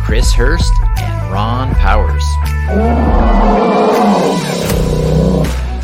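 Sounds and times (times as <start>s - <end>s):
speech: 0.1s - 4.2s
low growling: 2.6s - 5.7s
deep bear roar sound effect: 2.7s - 5.6s.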